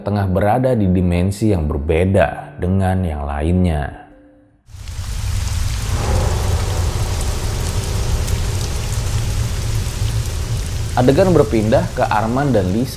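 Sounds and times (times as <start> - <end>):
speech: 0.0 - 4.0, 11.0 - 12.9
deep rolling thunder: 4.7 - 12.9
heavy rain: 4.7 - 12.9.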